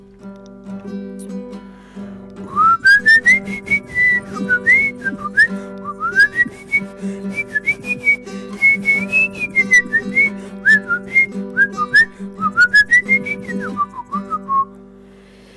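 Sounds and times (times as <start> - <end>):
guitar strumming: 0.0 - 15.5
person whistling a folk song melody: 2.4 - 14.8.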